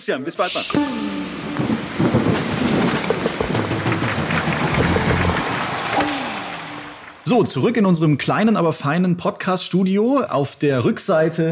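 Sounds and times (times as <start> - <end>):
speech: 0.0 - 2.4, 7.3 - 11.5
heavy rain falling outdoors: 0.6 - 7.3
low rumbling undertone: 0.8 - 7.4.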